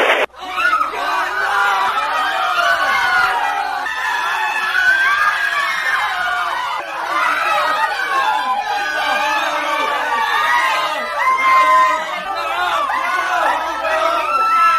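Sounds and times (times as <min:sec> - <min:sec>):
large protest crowd shouting and screaming: 0:00.0 - 0:14.7
laughter: 0:00.8 - 0:14.7.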